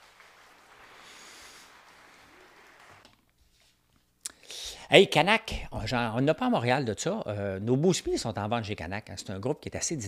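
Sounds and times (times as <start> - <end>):
dense applause of many hands clapping: 0.0 - 3.1
speech: 4.9 - 10.0.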